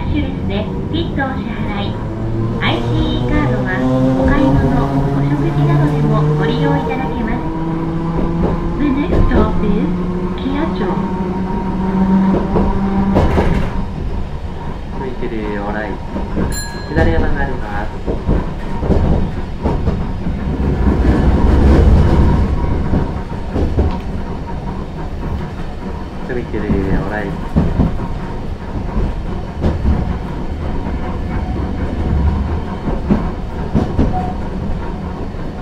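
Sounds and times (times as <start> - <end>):
electric train rolling on rails over track points: 0.0 - 35.6
speech: 0.2 - 7.4.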